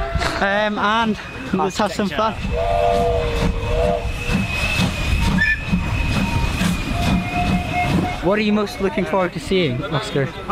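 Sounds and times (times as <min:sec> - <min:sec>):
steam train rolling along the rails: 0:00.0 - 0:10.5
speech: 0:00.4 - 0:04.1, 0:08.2 - 0:10.5
metallic squeals and whines of a steam train: 0:02.6 - 0:08.8.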